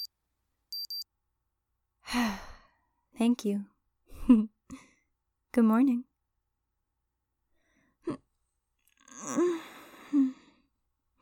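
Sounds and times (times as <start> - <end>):
alarm clock beeping in high thin electronic tones: 0.7 - 1.0
speech: 3.2 - 3.7, 4.3 - 4.5, 5.6 - 6.1
breathy sigh: 9.0 - 10.6.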